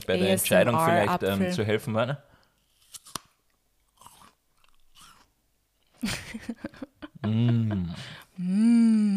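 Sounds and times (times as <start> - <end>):
speech: 0.1 - 2.3, 7.3 - 8.7
biting into a crunchy apple: 2.6 - 5.3
crunchy chewing of an apple: 2.6 - 5.4
laughter: 6.0 - 8.2.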